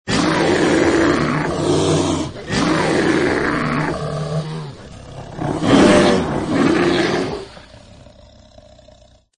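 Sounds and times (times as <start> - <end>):
brown bear roaring: 0.1 - 9.3.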